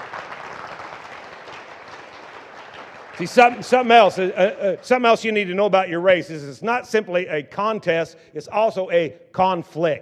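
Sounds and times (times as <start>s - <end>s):
audience clapping in agreement: 0.0s - 5.5s
speech: 3.2s - 9.9s.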